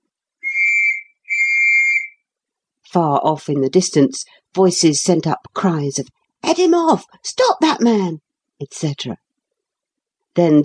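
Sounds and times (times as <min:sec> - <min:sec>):
shrill whistle blasts: 0:00.4 - 0:02.2
speech: 0:02.9 - 0:09.2, 0:10.4 - 0:10.6.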